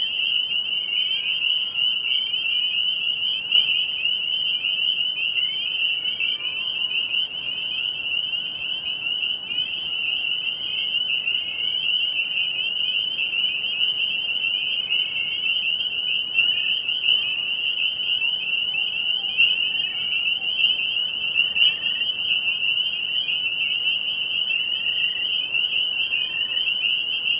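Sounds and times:
spring peeper chorus of overlapping high peeps: 0:00.0 - 0:27.3.

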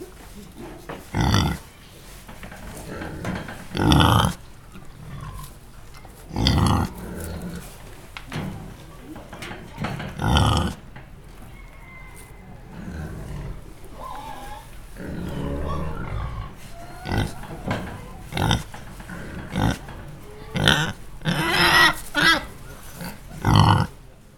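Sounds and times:
pigs grunting and snorting: 0:00.0 - 0:24.1
pigs squealing: 0:01.2 - 0:01.6, 0:03.7 - 0:04.4, 0:06.3 - 0:07.7, 0:10.2 - 0:10.8, 0:11.4 - 0:24.0.

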